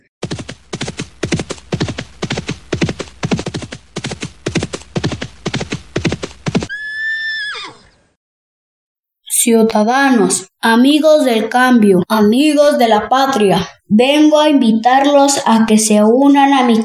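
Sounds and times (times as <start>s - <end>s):
horse hoofbeats clattering in a quick clip-clop: 0.2s - 6.8s
horse giving a loud wavering whinny: 6.7s - 8.1s
speech: 9.4s - 16.8s.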